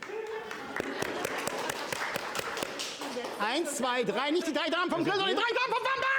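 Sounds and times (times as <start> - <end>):
applause from a small group: 0.0 - 3.5
speech: 3.4 - 6.0.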